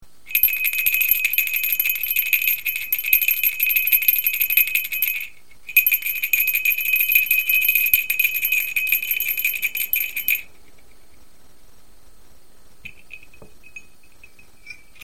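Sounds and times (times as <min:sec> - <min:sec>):
star-flower bell: 0:00.3 - 0:10.5.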